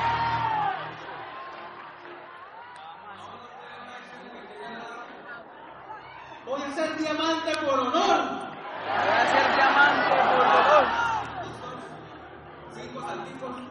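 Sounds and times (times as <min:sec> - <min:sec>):
people whooping: 0:00.0 - 0:03.0
large audience calling out to one another in overlapping chatter: 0:02.0 - 0:13.7
speech: 0:06.6 - 0:11.0.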